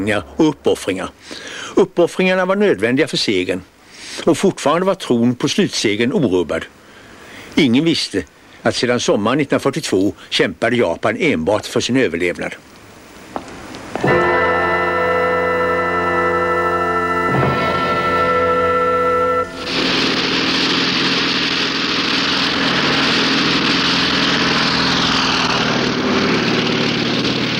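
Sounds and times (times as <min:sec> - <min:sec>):
speech: 0:00.0 - 0:06.8, 0:07.6 - 0:12.7
American propeller fighter planes taking off from an aircraft carrier: 0:13.6 - 0:27.5.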